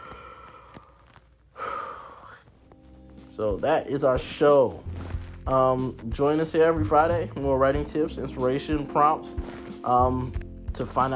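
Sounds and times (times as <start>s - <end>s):
deep breath: 0.0s - 2.6s
speech: 3.4s - 11.1s.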